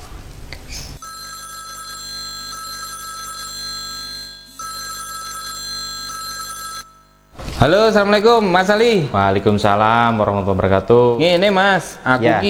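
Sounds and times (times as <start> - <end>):
electronic telephone ringing tone on the caller's end: 1.0 - 8.0
speech: 7.6 - 12.4.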